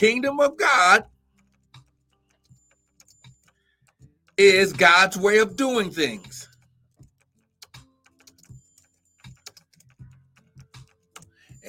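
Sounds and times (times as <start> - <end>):
speech: 0.0 - 1.1, 4.4 - 6.5
typing on a computer keyboard: 1.4 - 4.4, 6.5 - 11.4.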